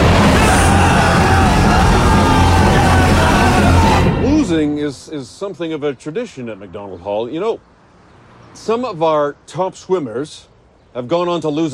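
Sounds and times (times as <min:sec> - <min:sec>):
group of boys on a swim team screaming at a pool: 0:00.0 - 0:04.6
speech: 0:04.6 - 0:07.7, 0:08.5 - 0:11.7.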